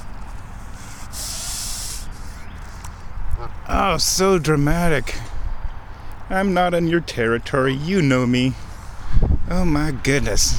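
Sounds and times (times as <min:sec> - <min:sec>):
goose hissing while walking through a billabong: 0:00.0 - 0:02.8
low noise: 0:00.0 - 0:10.5
speech: 0:03.4 - 0:05.3, 0:06.3 - 0:08.6, 0:09.5 - 0:10.5.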